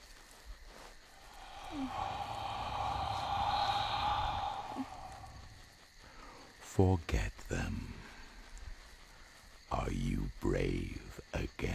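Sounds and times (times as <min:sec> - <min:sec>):
person blowing a long soft breath onto someone: 0:01.1 - 0:06.5
speech: 0:01.7 - 0:02.3, 0:06.8 - 0:07.9, 0:09.8 - 0:11.7.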